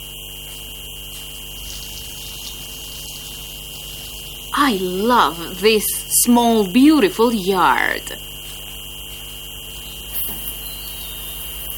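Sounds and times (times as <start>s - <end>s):
low mechanical hum: 0.0s - 11.7s
water running from a hose watering plants in a small yard: 1.1s - 5.8s
speech: 4.6s - 8.3s.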